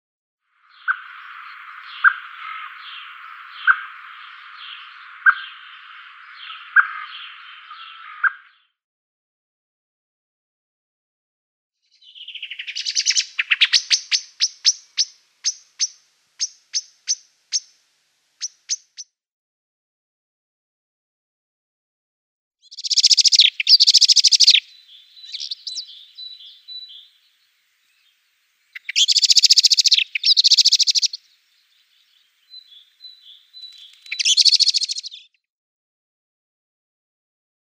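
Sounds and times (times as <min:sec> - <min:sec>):
Eurasian Blackbird calls: 0:00.7 - 0:08.6, 0:12.0 - 0:17.8, 0:22.6 - 0:35.3.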